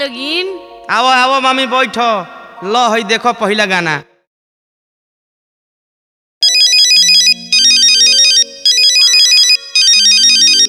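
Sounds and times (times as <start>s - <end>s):
sustained melodic backing of the ringtone: 0.0s - 2.7s, 6.9s - 10.6s
speech: 0.0s - 4.1s
phone ringtone for an incoming call with trilling electronic tones: 6.4s - 10.6s.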